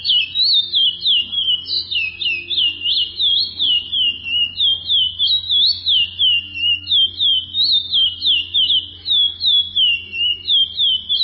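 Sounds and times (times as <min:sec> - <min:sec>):
Chestnut-bellied seed finch song of sweet high whistled notes: 0:00.0 - 0:11.2.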